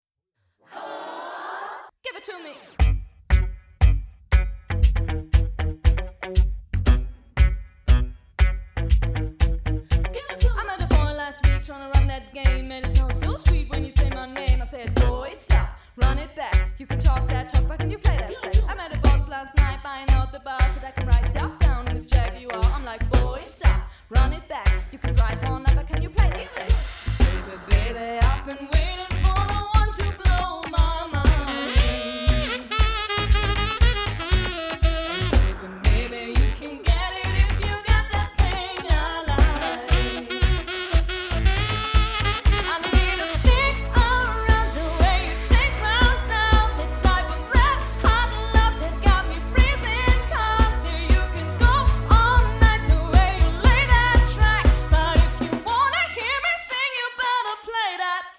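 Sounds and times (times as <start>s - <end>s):
drums: 2.8s - 56.8s
person singing: 10.2s - 32.8s, 35.4s - 40.6s, 42.5s - 57.7s
saxophone: 31.2s - 37.6s, 39.4s - 55.6s.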